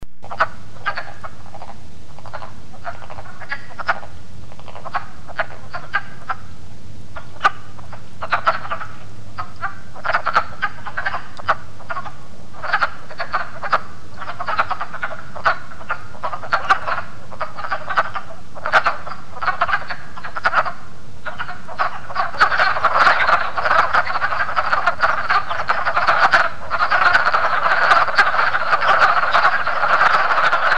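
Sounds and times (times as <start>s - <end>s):
wood frog calling: 0.2s - 30.7s.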